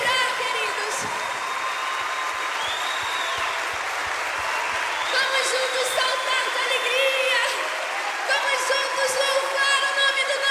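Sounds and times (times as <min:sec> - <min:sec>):
crowd applauding loudly: 0:00.0 - 0:10.5.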